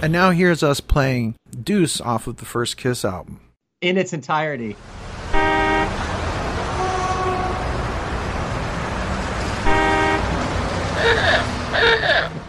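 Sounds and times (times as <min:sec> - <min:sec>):
speech: 0:00.0 - 0:06.0
constant rumble of street traffic: 0:04.7 - 0:12.4
car horn honking: 0:05.3 - 0:06.1, 0:06.7 - 0:07.8, 0:09.6 - 0:12.2.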